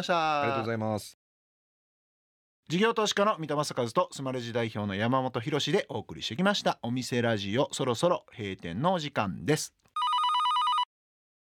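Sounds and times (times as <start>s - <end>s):
speech: 0.0s - 1.2s, 2.7s - 9.9s
telephone ringing with a trilling warble: 10.0s - 10.9s.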